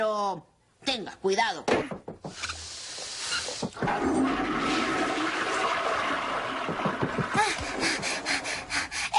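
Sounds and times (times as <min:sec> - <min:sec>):
speech: 0:00.0 - 0:02.6
toilet flushing: 0:03.7 - 0:09.1.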